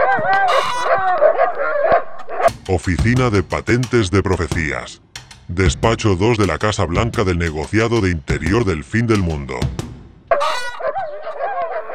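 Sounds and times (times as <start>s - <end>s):
dogs barking as they are let loose: 0.0s - 2.5s, 10.3s - 11.9s
speech: 2.7s - 9.8s.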